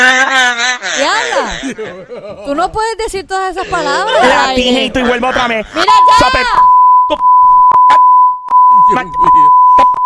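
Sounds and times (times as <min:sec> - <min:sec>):
laughter: 0:00.0 - 0:02.7
speech: 0:01.7 - 0:08.1, 0:08.8 - 0:10.0
steady high censor bleep tone: 0:05.9 - 0:10.0.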